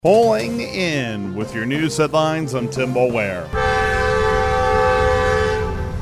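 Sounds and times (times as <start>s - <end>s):
speech: 0.0s - 4.0s
Amtrak passenger train horn blast in Southwest Kansas: 3.4s - 6.0s.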